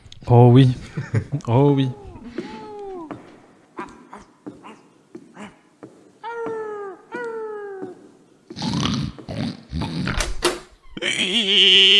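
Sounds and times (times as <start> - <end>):
laughter: 0.0 - 11.9
speech: 0.2 - 2.0
voice imitating a cat meowing in a jingle: 1.5 - 4.3, 6.2 - 10.0.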